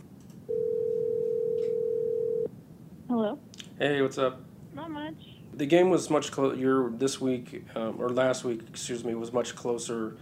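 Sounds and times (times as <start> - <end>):
faint hiss: 0.0 - 10.1
telephone dial tone while placing a call: 0.5 - 2.5
speech: 3.8 - 10.1.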